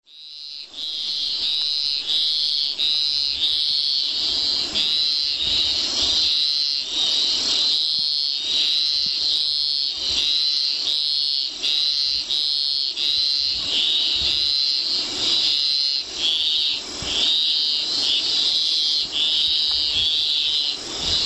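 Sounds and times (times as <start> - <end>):
Scinax fuscomarginatus frog calling: 0.1 - 21.2.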